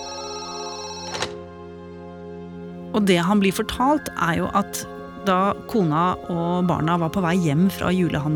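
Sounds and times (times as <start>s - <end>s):
telephone electronic ringtone: 0.0s - 1.2s
speech: 3.0s - 8.3s.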